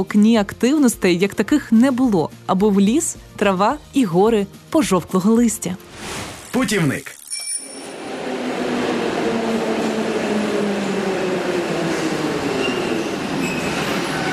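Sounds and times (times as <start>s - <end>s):
speech: 0.0s - 7.2s
faint squealing tones of metro train wheels: 7.3s - 8.1s, 12.4s - 14.3s
metro trains arriving from both directions underground at Arsenalna metro station: 7.7s - 14.3s.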